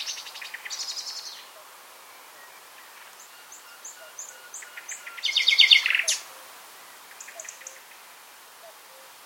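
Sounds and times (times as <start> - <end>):
Luscinia megarhynchos common nightingale singing: 0.0 - 7.9.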